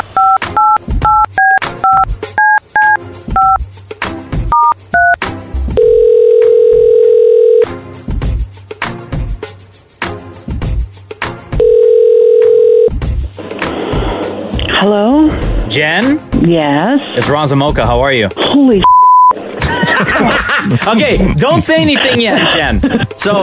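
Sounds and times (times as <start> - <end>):
outgoing phone ringback tones: 0.0 - 3.6, 5.8 - 7.7, 11.6 - 12.9
phone keypad beeps: 0.0 - 3.6, 4.5 - 5.2, 5.8 - 7.6, 11.6 - 12.9
rhythmic music: 0.0 - 23.4
speech: 15.8 - 18.9, 20.0 - 23.4
laughter: 19.4 - 23.4.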